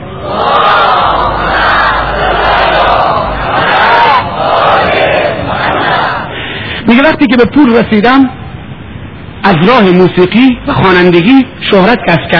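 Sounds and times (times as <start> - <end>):
large crowd chanting a salawat in unison: 0.1 - 6.4
speech: 7.2 - 8.4, 9.4 - 12.3.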